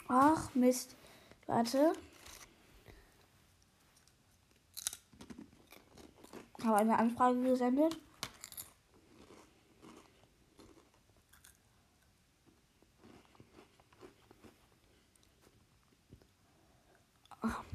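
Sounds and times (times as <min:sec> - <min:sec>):
speech: 0:00.1 - 0:02.1, 0:06.6 - 0:08.1
chewing potato chips: 0:04.0 - 0:06.9, 0:08.2 - 0:15.4.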